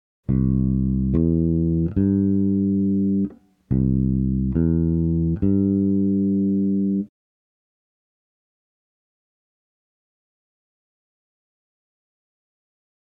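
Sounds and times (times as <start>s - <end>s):
major triad on bass: 0.3s - 7.1s.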